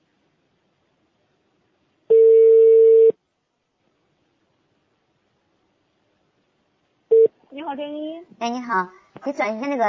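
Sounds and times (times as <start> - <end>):
steady telephone line tone: 2.1 - 3.2, 7.1 - 7.3
speech: 7.6 - 9.8.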